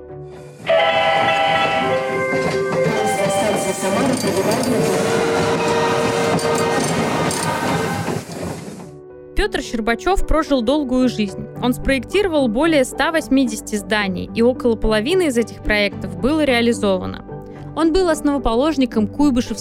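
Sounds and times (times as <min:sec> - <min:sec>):
train pulling in on the rails: 0:00.3 - 0:09.0
shrill metallic squealing from a train: 0:00.7 - 0:08.2
speech: 0:03.8 - 0:05.1, 0:09.4 - 0:17.2, 0:17.8 - 0:19.5.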